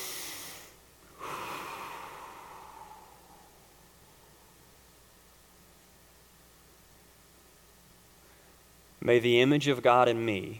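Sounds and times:
slow nasal in-breath: 0.0 - 3.6
speech: 9.0 - 10.5.

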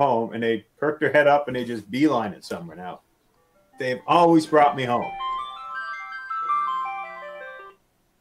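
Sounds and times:
speech: 0.0 - 3.1, 3.8 - 5.2
melodic electronic phone ringtone: 3.8 - 7.8.

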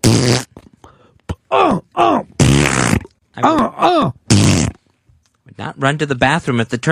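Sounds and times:
farting noises probably imitated by a voice: 0.0 - 1.5, 2.1 - 4.9
short strained grunts and groans: 1.2 - 4.3
speech: 5.8 - 6.9.

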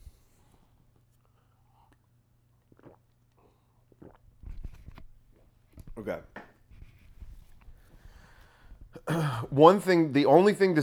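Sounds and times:
sips of water with lip clicks and slurps: 1.4 - 10.3
swallowing: 1.7 - 6.1
speech: 6.0 - 6.4, 9.4 - 10.8.

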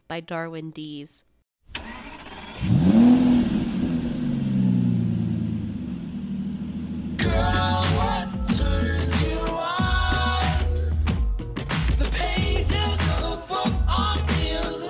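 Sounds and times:
speech: 0.1 - 2.0
car engine revving and rumbling while driven to work: 1.8 - 8.3
music with bright tones: 7.2 - 14.8.

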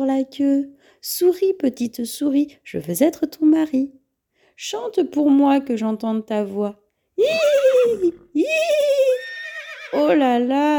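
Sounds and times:
speech: 0.0 - 4.0, 4.6 - 9.3, 9.9 - 10.7
big black horse neighing: 7.3 - 10.2.

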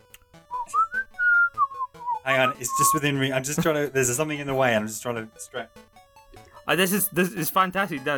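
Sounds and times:
person whistling: 0.5 - 3.0
speech: 2.3 - 5.9, 6.7 - 8.1.

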